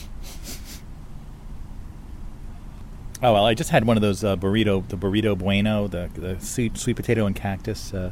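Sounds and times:
person sniffling: 0.0s - 0.9s
low rumble: 0.0s - 8.1s
speech: 3.2s - 8.1s.

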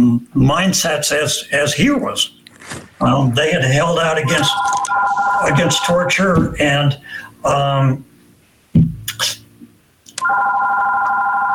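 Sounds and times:
speech: 0.3s - 8.1s
phone electronic ringtone: 4.2s - 6.3s, 10.2s - 11.5s.

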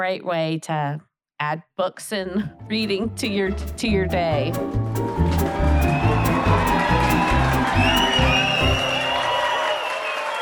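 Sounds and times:
speech: 0.0s - 5.6s
large crowd of fans cheering with whoops and shouts: 5.2s - 10.4s.

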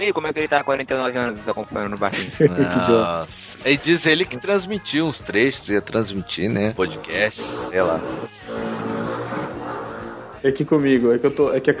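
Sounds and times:
speech: 0.0s - 8.7s, 10.4s - 11.7s
laughter: 1.8s - 4.1s, 6.4s - 9.4s
jet ski engines roaring beside a boat: 6.8s - 10.4s.

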